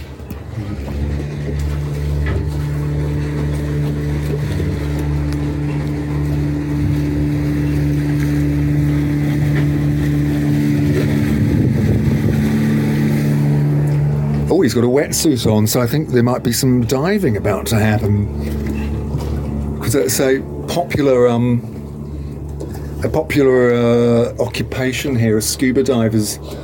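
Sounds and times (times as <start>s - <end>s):
motorboat passing by with a steady loud engine hum: 0.0s - 26.6s
speech: 0.6s - 1.0s, 14.7s - 18.6s, 19.9s - 21.7s, 23.0s - 26.6s
wind noise: 6.5s - 13.9s.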